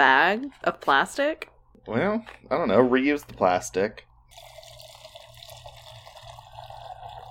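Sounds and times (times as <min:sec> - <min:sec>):
speech: 0:00.0 - 0:04.5
liquid pouring into a glass: 0:04.3 - 0:07.2.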